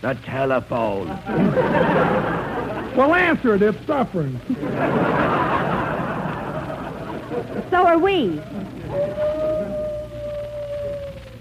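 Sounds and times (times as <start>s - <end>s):
speech: 0.0s - 5.4s, 7.4s - 9.8s
low hum: 0.0s - 11.3s
laughter: 0.9s - 10.1s
wolf-like howl sound effect: 8.4s - 11.3s.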